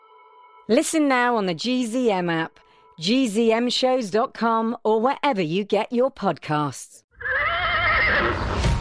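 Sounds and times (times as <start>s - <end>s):
speech: 0.7s - 7.0s, 8.1s - 8.7s
horse whinnying: 7.2s - 8.6s.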